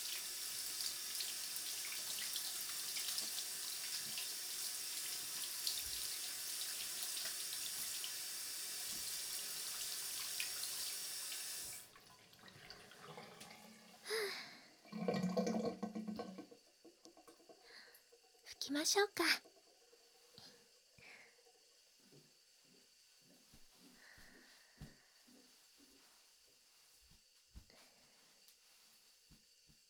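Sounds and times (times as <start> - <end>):
tap water running into a sink during rinsing: 0.0 - 22.3
speech: 18.7 - 19.5.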